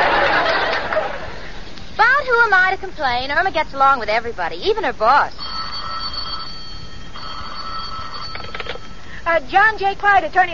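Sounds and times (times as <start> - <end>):
laughter: 0.0 - 1.6
steady low hiss: 0.0 - 10.5
speech: 2.4 - 5.4, 9.3 - 10.5
telephone bell ringing: 5.4 - 9.2.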